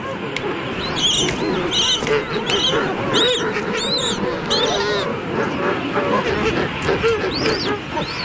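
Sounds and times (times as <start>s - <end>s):
crowded king penguin colony squawking and trumpeting: 0.3s - 8.2s
king penguin chick calling with warbling whistles: 0.4s - 5.1s, 7.1s - 8.2s.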